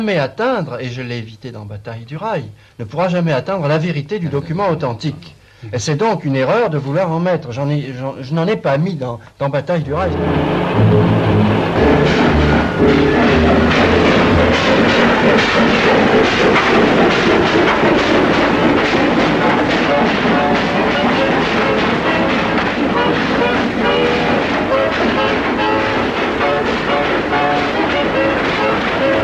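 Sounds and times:
speech: 0:00.0 - 0:13.5
train passing through a station in the evening: 0:03.0 - 0:05.2, 0:09.8 - 0:29.2.

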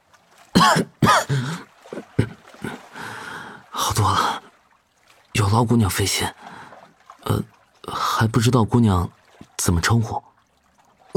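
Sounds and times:
speech: 0:00.6 - 0:01.4, 0:04.0 - 0:04.3, 0:05.5 - 0:06.6, 0:07.3 - 0:10.3
man coughing: 0:00.6 - 0:02.8.

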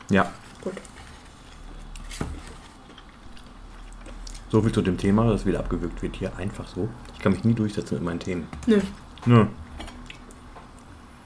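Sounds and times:
low hum: 0:00.0 - 0:11.2
speech: 0:00.1 - 0:00.9, 0:04.5 - 0:09.6
person chewing food close to microphone: 0:00.4 - 0:04.8, 0:06.5 - 0:07.6, 0:08.6 - 0:11.0.

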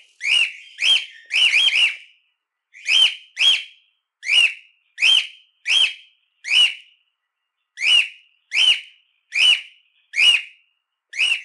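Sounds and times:
cockatiel whistling training song: 0:00.2 - 0:02.0, 0:02.8 - 0:06.9, 0:07.8 - 0:10.6, 0:11.2 - 0:11.4.

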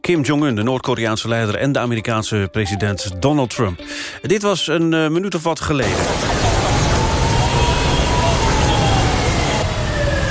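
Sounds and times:
speech: 0:00.1 - 0:06.8
sirens of delegation motorcades wailing in Hanoi: 0:05.8 - 0:10.2
loud dense roar of street traffic in Hanoi: 0:06.5 - 0:10.2.

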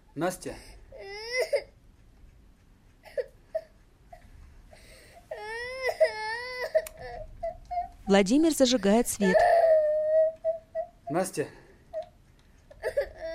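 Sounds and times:
speech: 0:00.2 - 0:00.8, 0:08.1 - 0:09.5, 0:11.1 - 0:11.6
girl crying: 0:01.0 - 0:01.8, 0:04.8 - 0:08.0, 0:09.2 - 0:11.1, 0:12.7 - 0:13.3.

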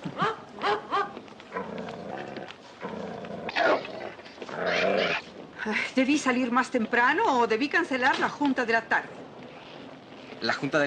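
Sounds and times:
ugly dog growling: 0:01.5 - 0:05.4
speech: 0:06.0 - 0:09.2, 0:10.4 - 0:10.8.

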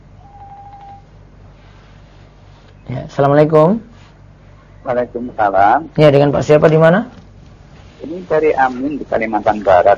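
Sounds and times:
faint low hum: 0:00.0 - 0:09.9
steady electronic telephone tone of an incoming call: 0:00.2 - 0:01.1
speech: 0:02.9 - 0:03.9, 0:04.8 - 0:07.2, 0:08.0 - 0:09.9.

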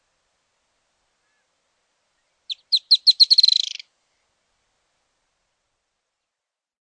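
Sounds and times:
Firewood-gatherer Anumbius annumbi chattering call: 0:02.5 - 0:03.8.

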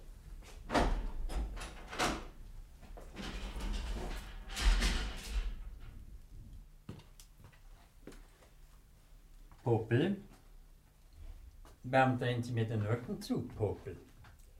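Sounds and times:
prison cell door being unlocked and opened: 0:00.7 - 0:02.4, 0:03.2 - 0:06.0
speech: 0:09.7 - 0:10.3, 0:11.8 - 0:14.1.

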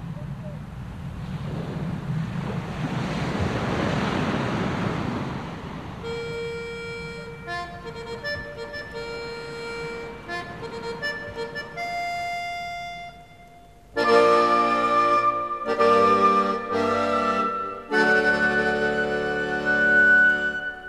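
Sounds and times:
wind noise: 0:00.0 - 0:12.2
seaplane landing on the shallow waters of the Jade Bight: 0:00.0 - 0:20.8.

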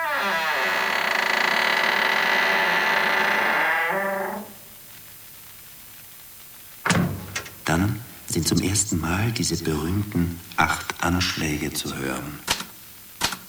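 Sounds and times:
door creaking as it falls shut: 0:00.0 - 0:04.7, 0:06.8 - 0:08.8
door shutting with a sharp click: 0:06.8 - 0:07.8
speech: 0:08.4 - 0:12.5.

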